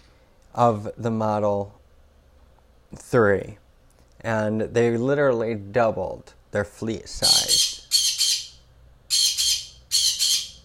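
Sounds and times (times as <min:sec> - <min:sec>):
speech: 0:00.6 - 0:01.8, 0:02.9 - 0:03.6, 0:04.2 - 0:07.6
pet bird squawking: 0:07.2 - 0:10.6.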